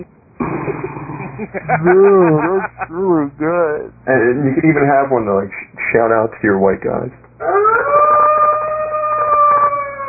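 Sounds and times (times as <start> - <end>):
speech: 0.0 - 0.2, 1.4 - 8.0
laughter: 0.4 - 3.2
wolf howling: 7.4 - 10.0.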